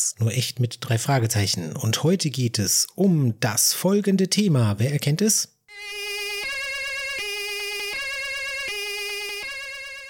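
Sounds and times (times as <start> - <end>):
speech: 0.0 - 6.0
emergency vehicle two-tone siren: 5.7 - 10.0.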